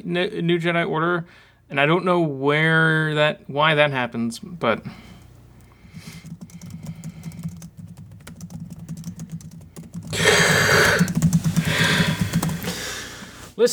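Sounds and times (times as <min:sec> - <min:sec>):
speech: 0:00.0 - 0:05.1
typing on a computer keyboard: 0:05.6 - 0:12.8.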